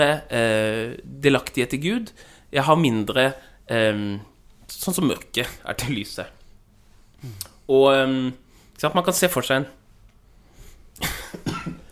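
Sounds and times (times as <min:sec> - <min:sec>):
speech: 0:00.0 - 0:06.4, 0:07.2 - 0:09.8
harsh coughs: 0:11.0 - 0:11.8.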